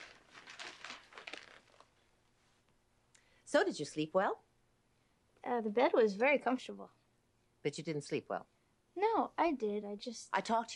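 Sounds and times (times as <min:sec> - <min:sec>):
newspaper pages rustling as handed over at breakfast: 0:00.0 - 0:02.0
speech: 0:03.5 - 0:04.5, 0:05.4 - 0:07.0, 0:07.6 - 0:10.7.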